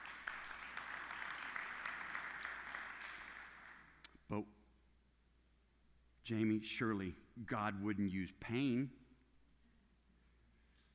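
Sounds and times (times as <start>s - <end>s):
crowd applauding at a preacher's call: 0.0s - 4.0s
speech: 4.3s - 4.6s, 6.3s - 9.0s.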